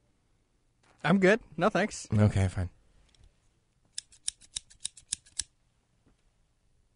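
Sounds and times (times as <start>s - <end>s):
speech: 1.0s - 2.8s
scissors cutting a stuffed wiener-dog toy: 4.0s - 5.5s.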